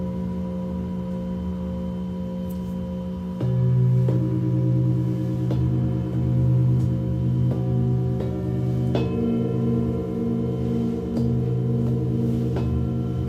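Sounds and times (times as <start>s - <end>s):
singing bowl humming with a low sustained tone: 0.0s - 13.2s
light strikes on a singing bowl: 3.4s - 13.2s.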